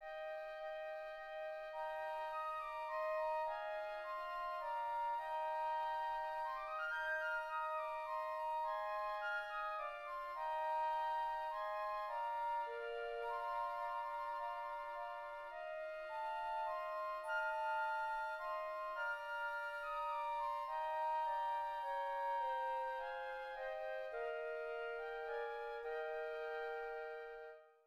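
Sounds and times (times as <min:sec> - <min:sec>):
flutes: 0:00.0 - 0:27.8.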